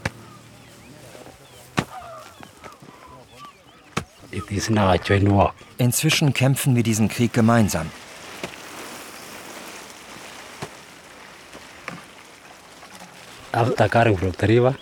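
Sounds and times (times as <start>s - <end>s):
speech: 4.4s - 8.0s, 13.6s - 14.7s
water pouring onto tree seedlings: 6.4s - 14.7s.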